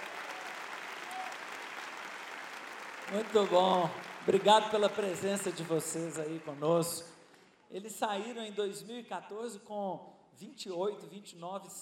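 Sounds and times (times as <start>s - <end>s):
crowd applauding: 0.0s - 7.2s
speech: 3.1s - 11.7s.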